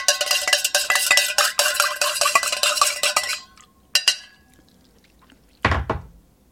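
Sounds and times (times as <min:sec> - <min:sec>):
spoon stirring a drink inside a plastic Nalgene bottle: 0:00.0 - 0:04.7
dull knocks: 0:05.6 - 0:06.2.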